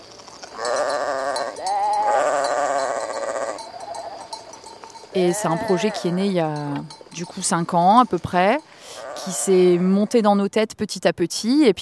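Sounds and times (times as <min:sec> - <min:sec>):
light clinking: 0:00.0 - 0:08.8
goat bleating: 0:00.6 - 0:04.4, 0:05.2 - 0:06.8, 0:08.9 - 0:10.2
speech: 0:05.2 - 0:11.7.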